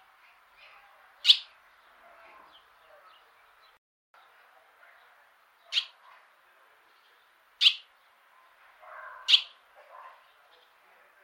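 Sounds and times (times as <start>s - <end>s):
bird chirping: 0.2s - 6.2s, 6.8s - 10.8s
bird warbling with soft lower notes: 1.2s - 1.5s, 7.6s - 7.9s, 8.9s - 9.6s.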